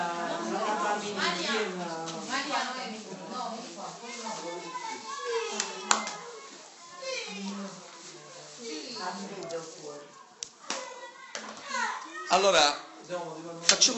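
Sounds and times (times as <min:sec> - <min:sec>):
children chattering and playing during an evening sermon: 0:00.0 - 0:13.9
sharp slaps or claps: 0:10.4 - 0:10.9
speech: 0:12.4 - 0:13.9.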